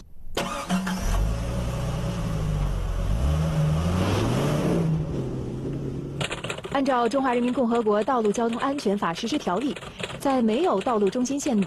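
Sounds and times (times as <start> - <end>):
car engine starting and accelerating at 30 km/h: 0.4 - 6.4
speech: 6.8 - 11.6.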